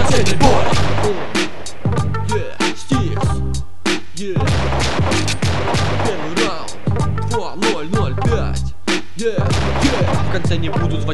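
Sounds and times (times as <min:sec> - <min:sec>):
loud rapid bursts of gunfire: 0:00.0 - 0:01.9, 0:04.4 - 0:07.0, 0:09.5 - 0:11.1
thumping low bass rhythm: 0:00.0 - 0:11.1.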